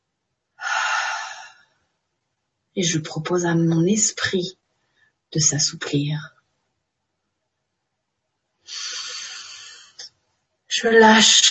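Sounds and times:
slow exhale during a relaxation breathing exercise: 0:00.6 - 0:01.7, 0:08.7 - 0:10.1
speech: 0:02.8 - 0:04.6, 0:05.3 - 0:06.4, 0:10.8 - 0:11.4.

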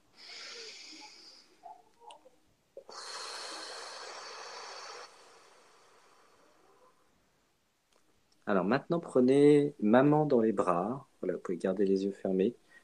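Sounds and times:
slow breath in and out: 0:00.0 - 0:01.8, 0:02.8 - 0:07.0, 0:12.6 - 0:12.8
speech: 0:08.5 - 0:12.6.

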